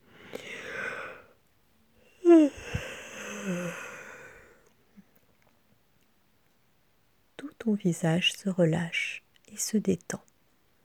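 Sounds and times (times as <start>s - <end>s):
big deep deliberate yawn: 2.2s - 4.6s
speech: 7.7s - 10.3s.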